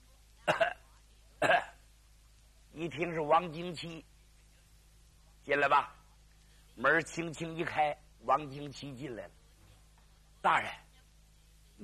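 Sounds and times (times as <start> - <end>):
person coughing outside: 0.5 - 0.8, 1.4 - 1.8
speech: 2.8 - 4.1, 5.5 - 6.0, 6.8 - 9.4, 10.4 - 10.8.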